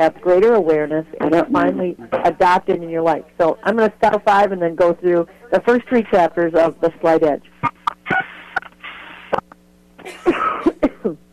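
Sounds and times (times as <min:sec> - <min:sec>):
speech: 0:00.0 - 0:07.8
faint steady hum: 0:00.0 - 0:11.3
short dry coughs: 0:10.0 - 0:11.2.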